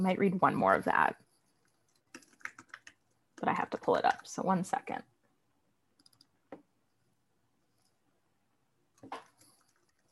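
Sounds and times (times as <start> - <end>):
speech: 0.0 - 1.2, 3.4 - 5.1
typing on a computer keyboard: 1.6 - 3.2, 6.0 - 6.3, 9.0 - 10.1.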